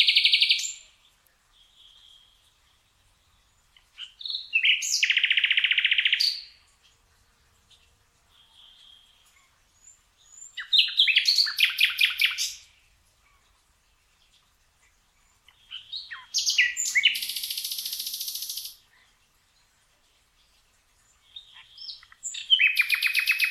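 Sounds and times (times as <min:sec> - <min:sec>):
common nightingale Luscinia megarhynchos singing: 0:00.0 - 0:06.8, 0:07.7 - 0:13.4, 0:15.5 - 0:18.8, 0:21.2 - 0:23.4.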